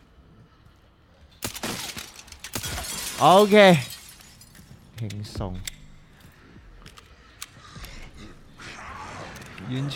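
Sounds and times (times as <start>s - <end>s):
glass floor shattering from gunshots: 1.4s - 4.6s
speech: 3.2s - 3.9s, 5.0s - 5.7s, 9.7s - 9.9s.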